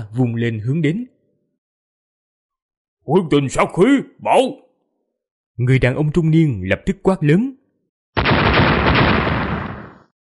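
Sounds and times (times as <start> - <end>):
speech: 0.1 - 1.2, 3.1 - 4.6, 5.6 - 7.6
loud explosive blast: 8.2 - 10.1.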